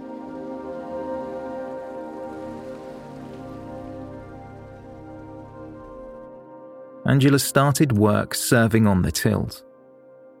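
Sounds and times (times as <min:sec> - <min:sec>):
heavy rain pouring on a hard surface: 0:00.0 - 0:05.9
low rumbling hum: 0:02.2 - 0:06.4
speech: 0:07.1 - 0:09.7.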